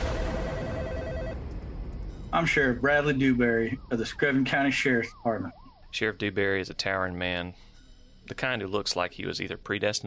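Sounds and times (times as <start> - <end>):
telephone ringing with a steady electronic tone: 0.0 - 1.4
low rumble: 0.0 - 4.5
speech: 2.4 - 7.7, 8.3 - 10.0.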